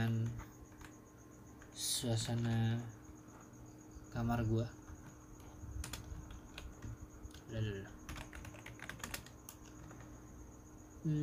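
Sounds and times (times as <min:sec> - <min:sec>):
typing on a computer keyboard: 0:00.0 - 0:01.0, 0:01.6 - 0:02.8, 0:04.9 - 0:10.1
steady hum of a fan: 0:00.0 - 0:11.2
speech: 0:01.8 - 0:03.0, 0:04.2 - 0:04.8, 0:07.5 - 0:08.0, 0:11.0 - 0:11.2.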